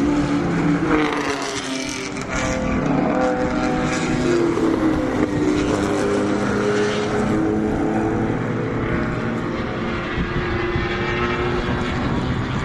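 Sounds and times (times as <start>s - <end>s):
vintage racing car engines droning on a flat curvy track: 0.0s - 12.6s.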